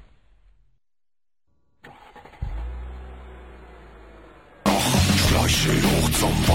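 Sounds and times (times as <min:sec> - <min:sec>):
car engine cranking and starting: 0:01.8 - 0:06.4.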